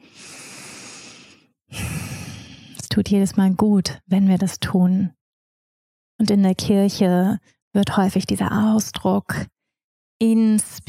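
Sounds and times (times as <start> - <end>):
deep deliberate breathing in and out: 0.0 - 2.8
speech: 3.0 - 5.2, 6.2 - 9.5, 10.2 - 10.8.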